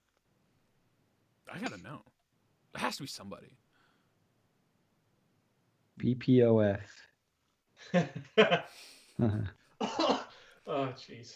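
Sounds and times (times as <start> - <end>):
speech: 1.5 - 3.6, 6.0 - 7.1, 7.8 - 11.3
harsh raspy COVID coughing fit: 9.2 - 10.4.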